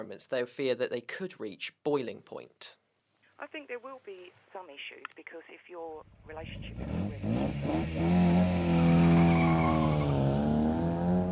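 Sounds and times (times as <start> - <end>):
speech: 0.0 - 2.8, 3.4 - 8.2
classic white Ford Escort engine roaring round a corner on an old motor racing circuit: 6.1 - 11.3.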